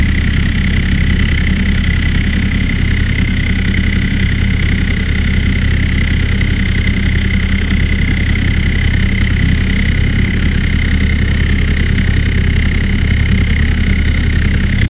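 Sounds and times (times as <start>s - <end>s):
engine idling: 0.0s - 14.9s.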